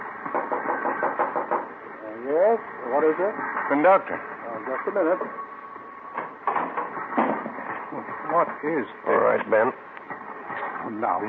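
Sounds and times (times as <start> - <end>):
knocking on a locked train compartment door: 0.3 - 1.7
speech: 2.6 - 5.5, 7.9 - 9.9, 10.8 - 11.2.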